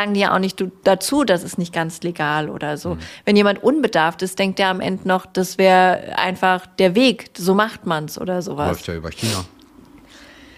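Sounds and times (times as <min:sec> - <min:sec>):
speech: 0:00.0 - 0:09.6
person sneezing: 0:02.9 - 0:03.1, 0:09.2 - 0:09.5.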